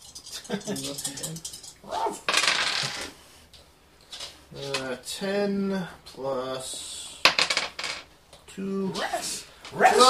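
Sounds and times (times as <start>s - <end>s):
speech: 0.5s - 3.2s, 4.5s - 6.9s, 8.6s - 10.0s
six-sided dice rolled on a table during a tabletop roleplaying game: 2.2s - 3.1s, 7.3s - 8.1s.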